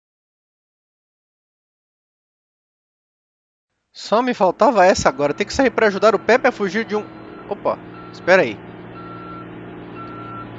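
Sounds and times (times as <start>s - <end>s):
speech: 4.0s - 8.7s
low truck engine rumble: 4.0s - 10.5s
truck reversing alarm beeps: 4.8s - 10.5s.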